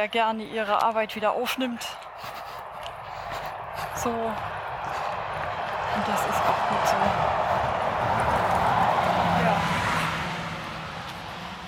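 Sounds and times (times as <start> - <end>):
speech: 0.0 - 2.4, 4.0 - 4.6, 6.0 - 7.3
broad road noise of passing bus: 0.0 - 11.6
local bus engine drone: 1.8 - 11.6.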